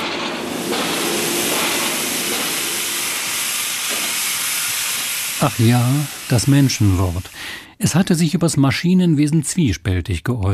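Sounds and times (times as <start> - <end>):
steam engine hissing and chugging with escaping steam: 0.0 - 7.7
speech: 5.4 - 10.5.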